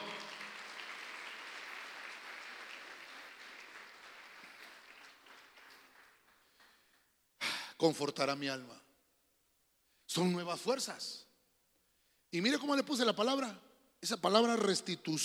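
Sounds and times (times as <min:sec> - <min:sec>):
crowd clapping loudly: 0:00.0 - 0:07.1
speech: 0:07.8 - 0:08.8, 0:10.1 - 0:11.3, 0:12.3 - 0:15.2.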